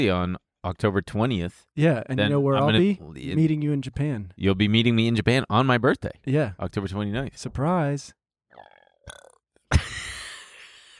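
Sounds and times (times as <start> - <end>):
speech: 0.0 - 9.2
loud drawn-out throaty burp: 8.5 - 9.4.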